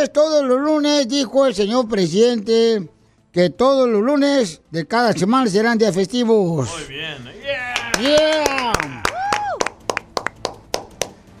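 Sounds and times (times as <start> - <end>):
speech: 0.0 - 9.1
wavering vocal cry or whoop: 7.5 - 9.8
scattered hand claps: 7.7 - 11.3.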